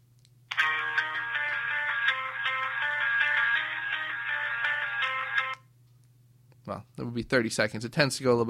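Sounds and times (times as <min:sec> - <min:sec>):
cell phone ringtone melody played into a microphone: 0:00.5 - 0:05.6
speech: 0:06.7 - 0:08.4.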